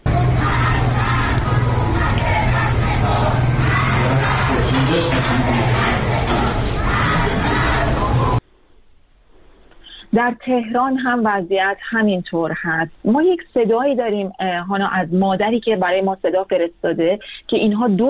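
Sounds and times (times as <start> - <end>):
crowd of protesters in Shiraz chanting slogans in unison: 0.0 - 8.4
speech: 10.2 - 18.0.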